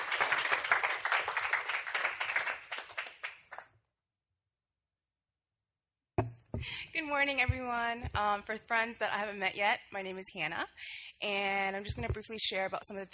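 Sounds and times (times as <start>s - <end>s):
audience applauding to welcome a student speaker: 0.0s - 3.7s
speech: 6.6s - 13.1s.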